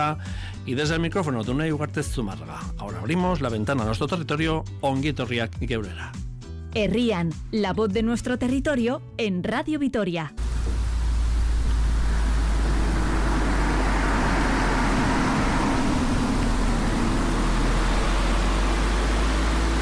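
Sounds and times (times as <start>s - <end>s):
speech: 0.0s - 10.4s
road traffic passing with engine and tire noise: 10.4s - 19.7s.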